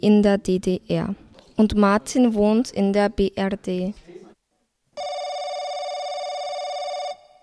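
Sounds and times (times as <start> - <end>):
speech: 0.0 - 4.1
telephone ringing for a call: 5.0 - 7.4.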